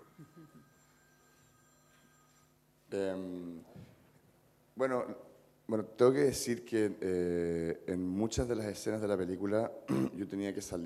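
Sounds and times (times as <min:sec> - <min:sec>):
telephone ringing with a loud electronic trill: 0:00.0 - 0:02.6
speech: 0:02.9 - 0:03.9, 0:04.8 - 0:10.8.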